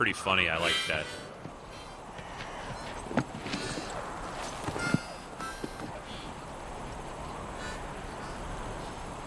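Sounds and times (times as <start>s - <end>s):
speech: 0.0s - 1.2s
outdoor hiss: 0.0s - 9.2s
horse hooves clip-clopping: 1.4s - 6.0s.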